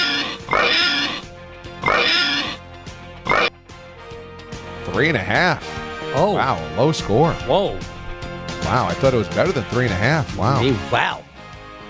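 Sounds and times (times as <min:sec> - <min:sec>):
pig oinking loudly: 0:00.0 - 0:02.6, 0:03.2 - 0:03.6
speech: 0:05.0 - 0:07.9, 0:08.7 - 0:11.2.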